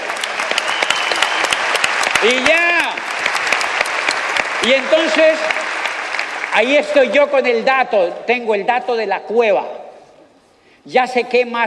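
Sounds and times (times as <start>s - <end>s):
audience applause: 0.0s - 7.1s
speech: 2.2s - 2.7s, 4.6s - 5.6s, 6.6s - 9.8s, 10.8s - 11.6s.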